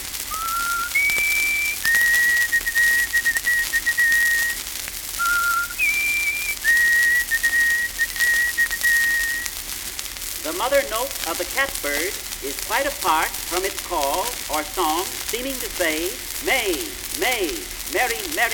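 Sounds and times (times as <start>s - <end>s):
white-throated sparrow clear whistled call: 0.3s - 4.6s, 5.2s - 9.6s
speech: 10.7s - 18.5s.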